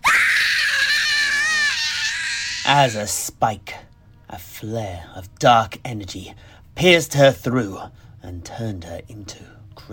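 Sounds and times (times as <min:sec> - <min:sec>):
woman screaming: 0:00.0 - 0:02.7
speech: 0:02.7 - 0:09.9.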